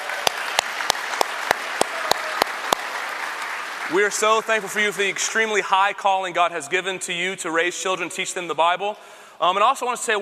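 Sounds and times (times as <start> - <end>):
one clapper's sharp evenly spaced claps: 0.0 - 4.9
audience applauding for mothers: 0.0 - 5.6
speech: 3.9 - 10.1.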